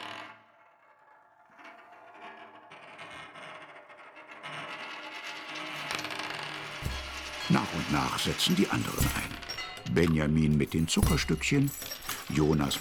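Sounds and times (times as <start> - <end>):
metallic rattling and clinking: 5.4 - 12.8
speech: 7.5 - 12.8.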